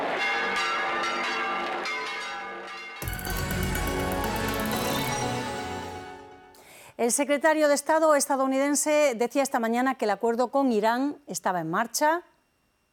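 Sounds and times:
church bells pealing during procession: 0:00.2 - 0:06.5
speech: 0:07.0 - 0:12.3.

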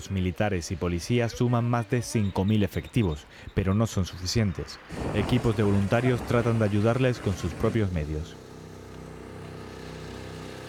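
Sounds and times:
speech: 0:00.0 - 0:08.4
A400M military turboprop aircraft flying during wildfire firefighting: 0:04.8 - 0:10.6.

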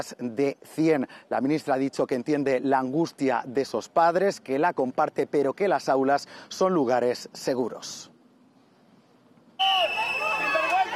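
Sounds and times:
speech: 0:00.0 - 0:08.1
crowd whistling: 0:09.6 - 0:10.9
dense hubbub of protesting voices: 0:09.9 - 0:10.9.

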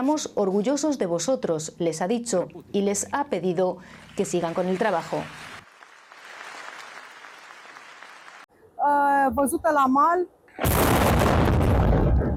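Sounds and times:
speech: 0:00.0 - 0:05.6, 0:09.3 - 0:11.4
naval drone explosion in the port of Constanța: 0:10.6 - 0:12.3.

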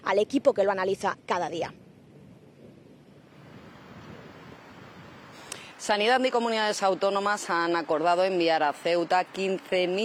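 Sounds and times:
speech: 0:00.1 - 0:01.8, 0:05.8 - 0:10.0
windy hiss over the surf: 0:01.8 - 0:10.0
waves breaking on a beach: 0:03.3 - 0:10.0.

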